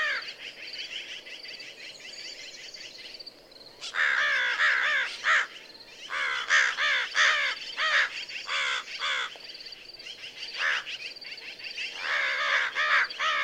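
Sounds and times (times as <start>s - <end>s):
American crow cawing: 0.0s - 0.3s, 3.8s - 9.4s, 10.6s - 11.0s, 12.0s - 13.4s.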